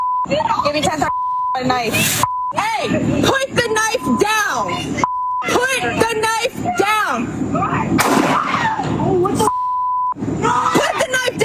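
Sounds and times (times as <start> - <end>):
censoring beep: 0.0 - 2.7, 3.3 - 6.2, 9.4 - 10.2
speech: 0.2 - 9.5
people shouting: 5.4 - 9.1, 10.4 - 11.4
gunshot in police video: 8.0 - 8.7.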